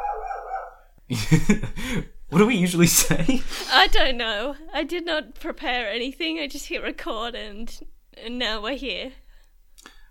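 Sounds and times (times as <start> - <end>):
single drawn-out dog bark: 0.0 - 0.9
laughter: 1.1 - 2.0
speech: 1.1 - 9.2.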